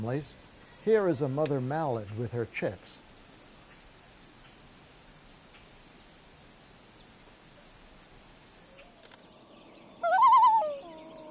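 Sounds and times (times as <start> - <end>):
speech: 0.0 - 3.0
upset loon calling near its nest on a floating platform: 10.0 - 11.2.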